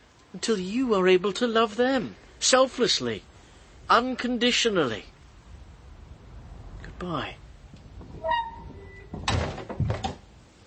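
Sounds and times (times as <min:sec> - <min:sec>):
speech: 0:00.3 - 0:03.3, 0:03.9 - 0:05.1, 0:07.0 - 0:07.4
door creaking on its hinges: 0:08.0 - 0:10.3.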